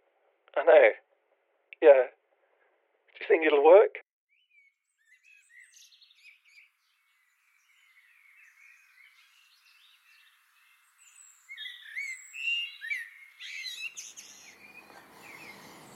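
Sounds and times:
speech: 0:00.6 - 0:01.0, 0:01.8 - 0:02.2, 0:03.2 - 0:04.0
blackbird singing in a garden: 0:04.3 - 0:15.9.

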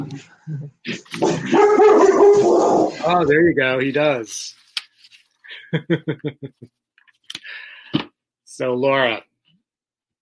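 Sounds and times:
speech: 0:00.1 - 0:04.6, 0:05.7 - 0:06.8, 0:08.6 - 0:09.3
male dog barking: 0:01.2 - 0:02.9
laughter: 0:05.5 - 0:06.7.

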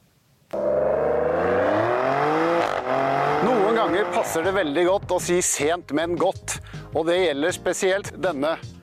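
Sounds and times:
Maserati Grecale Trofeo Italian compact performance SUV engine revving: 0:00.6 - 0:04.5
speech: 0:03.8 - 0:08.7.

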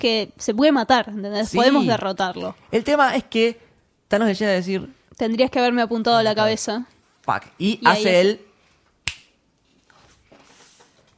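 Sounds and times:
speech: 0:00.0 - 0:08.5
faint airy noise: 0:00.0 - 0:11.1
finger snap: 0:09.0 - 0:09.3.

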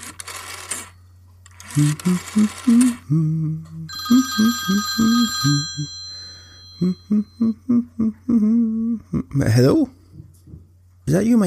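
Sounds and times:
speech: 0:01.8 - 0:06.0, 0:06.8 - 0:10.0, 0:11.1 - 0:11.4
telephone ringing on an outgoing call: 0:03.9 - 0:07.3.

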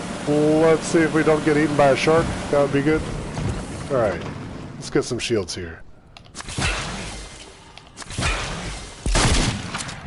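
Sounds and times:
speech: 0:00.2 - 0:03.2, 0:03.9 - 0:05.8
video game shotgun blasts: 0:06.4 - 0:07.4, 0:08.0 - 0:10.0.

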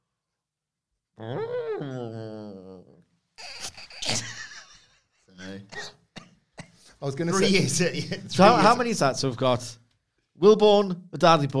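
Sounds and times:
speech: 0:01.2 - 0:02.2, 0:07.0 - 0:09.8, 0:10.4 - 0:11.5
voice imitating an elephant-cow hybrid call: 0:01.2 - 0:04.0
choppy laughter-like noises: 0:03.4 - 0:05.3.

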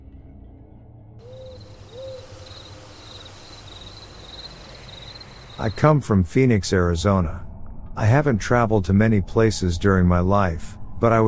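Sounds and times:
low rumble: 0:00.0 - 0:02.9, 0:03.5 - 0:11.2
owl hooting: 0:01.2 - 0:05.8
high pulsing insect chirps at night: 0:01.2 - 0:06.1
speech: 0:05.6 - 0:11.2.

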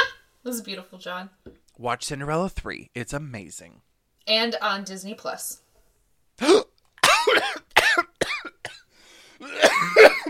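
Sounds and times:
speech: 0:00.4 - 0:05.6, 0:10.0 - 0:10.2
person coughing after choking on saliva: 0:06.4 - 0:08.8, 0:09.4 - 0:10.2.

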